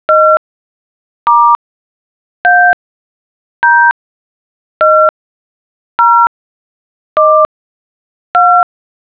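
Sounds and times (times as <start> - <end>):
dial tones: 0.1 - 0.4, 1.3 - 1.6, 2.4 - 2.8, 4.8 - 5.1, 6.0 - 6.3, 7.2 - 7.5, 8.4 - 8.7.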